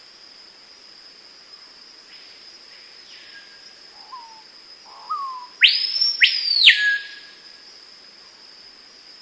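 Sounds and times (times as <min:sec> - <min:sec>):
high-pitched insect buzzing: 0:00.0 - 0:09.2
screaming piha whistle call: 0:04.0 - 0:07.4.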